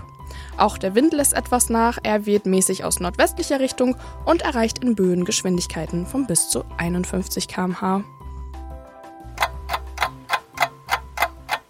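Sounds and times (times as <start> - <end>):
speech: 0.6 - 8.2
clock ticking as a morning wake-up call: 9.3 - 11.6.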